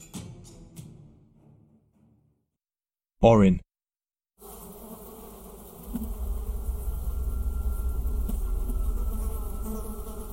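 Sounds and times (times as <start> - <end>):
speech: 3.2 - 3.6
steady droning buzz of flies: 4.4 - 10.3.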